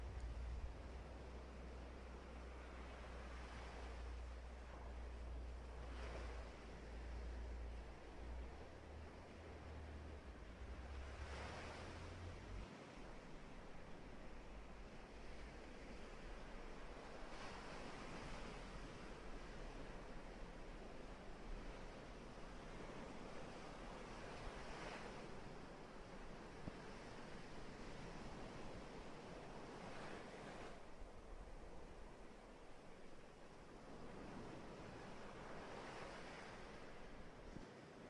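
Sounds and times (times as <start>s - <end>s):
deep low rumble of surf: 0.0s - 2.0s
ocean waves washing in and out: 0.0s - 38.0s.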